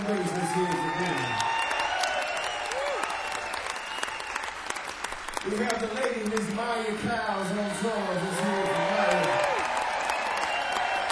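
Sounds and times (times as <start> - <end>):
crowd clapping in dense continuous applause: 0.0 - 11.1
brief whistles: 2.2 - 4.6, 10.1 - 11.1
speech: 5.6 - 8.5.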